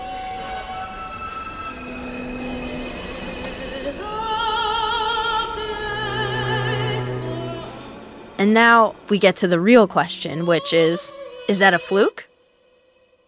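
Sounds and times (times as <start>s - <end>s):
subway train motor electronics whining in stepped tones: 0.0s - 11.0s
speech: 8.4s - 12.3s.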